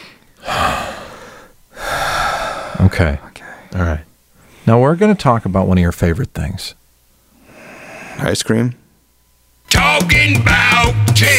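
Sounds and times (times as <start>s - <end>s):
person drawing deep breaths to calm down: 0.0s - 4.8s, 7.2s - 8.3s
speech: 2.9s - 6.8s, 8.2s - 8.8s, 9.8s - 11.3s.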